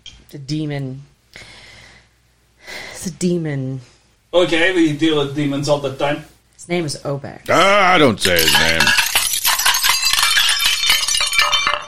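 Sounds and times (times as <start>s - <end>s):
speech: 0.3s - 1.5s, 3.0s - 9.0s
glass dropping and shattering: 8.2s - 11.8s
glass shards tinkling and clinking: 8.2s - 11.8s.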